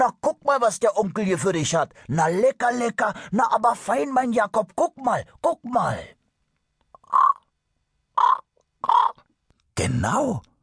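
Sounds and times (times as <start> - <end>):
speech: 0.0 - 6.2, 9.8 - 10.5
raven cawing: 7.0 - 7.5, 8.2 - 9.3.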